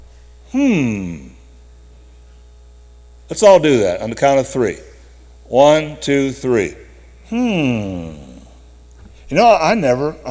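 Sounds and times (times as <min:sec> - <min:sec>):
faint steady electrical hum: 0:00.0 - 0:10.2
speech: 0:00.5 - 0:01.3, 0:03.3 - 0:04.9, 0:05.5 - 0:08.3, 0:09.3 - 0:10.2
person humming a single note sliding downward in pitch: 0:00.5 - 0:01.4, 0:07.3 - 0:08.6.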